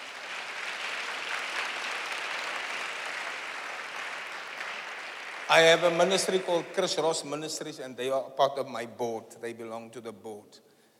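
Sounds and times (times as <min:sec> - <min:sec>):
audience applause: 0:00.0 - 0:07.2
speech: 0:05.5 - 0:10.7.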